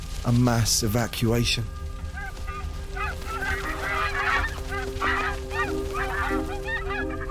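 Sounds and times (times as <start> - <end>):
speech: 0.2 - 1.8
flock of geese honking: 2.0 - 7.2.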